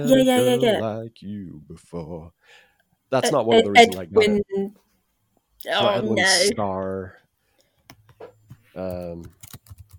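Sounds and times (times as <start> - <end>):
speech: 0.0 - 4.8, 5.6 - 7.2, 8.2 - 9.4
typing on a computer keyboard: 8.8 - 9.9.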